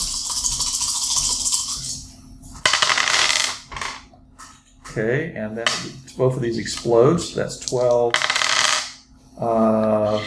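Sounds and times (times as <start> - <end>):
four dice rolling on a hard table in a game: 2.6 - 4.1, 7.7 - 9.0
speech: 5.0 - 8.4, 9.4 - 10.2.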